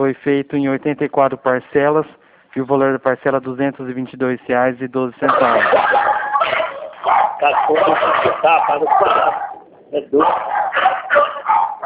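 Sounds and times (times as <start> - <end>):
speech: 0.0 - 6.2, 7.4 - 11.2
several dogs barking through a phone-like line: 5.3 - 11.8.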